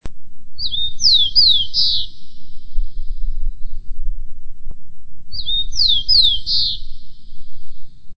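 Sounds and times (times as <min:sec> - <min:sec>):
low rumble: 0:00.0 - 0:08.1
rufous-collared sparrow singing: 0:00.6 - 0:03.9, 0:05.3 - 0:07.9.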